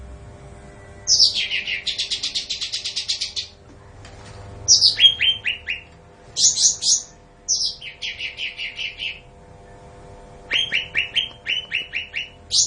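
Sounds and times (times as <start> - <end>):
bulbul singing high notes and even chirps: 1.0 - 3.6, 4.6 - 9.8, 10.5 - 12.6.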